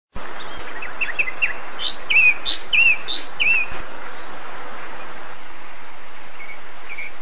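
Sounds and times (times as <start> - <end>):
large lark calling: 0.8 - 4.3.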